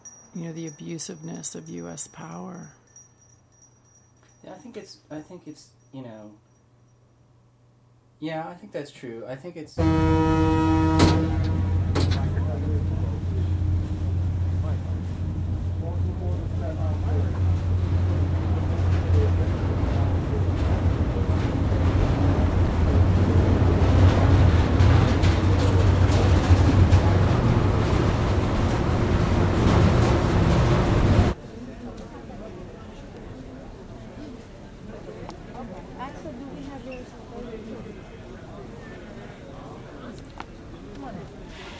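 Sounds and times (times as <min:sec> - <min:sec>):
speech: 0:00.4 - 0:02.8, 0:04.4 - 0:06.5, 0:08.2 - 0:11.6
ferry horn blast at terminal: 0:09.8 - 0:14.6
ferry engine low rumble: 0:09.8 - 0:31.4
ambient ferry terminal noise: 0:09.8 - 0:41.7.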